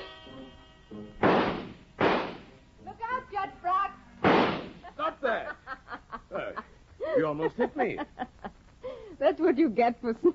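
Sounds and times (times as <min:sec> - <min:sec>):
pistol shots in a radio drama: 0:01.2 - 0:02.5, 0:04.2 - 0:04.8
people speaking and chuckling: 0:04.8 - 0:09.2
speech: 0:09.6 - 0:10.2.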